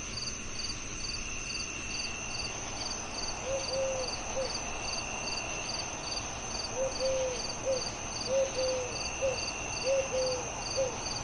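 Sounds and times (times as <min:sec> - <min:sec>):
crickets chirping on a summer night: 0:00.0 - 0:11.2
steady high insect tone: 0:00.0 - 0:11.2
owl hooting: 0:03.4 - 0:04.7, 0:06.6 - 0:11.2.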